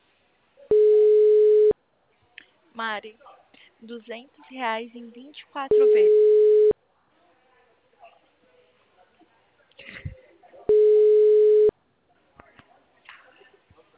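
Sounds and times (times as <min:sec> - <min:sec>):
faint sounds: 0:00.0 - 0:13.9
ringback tone of an outgoing phone call: 0:00.7 - 0:01.7, 0:05.7 - 0:06.7, 0:10.7 - 0:11.7
speech: 0:02.8 - 0:06.4.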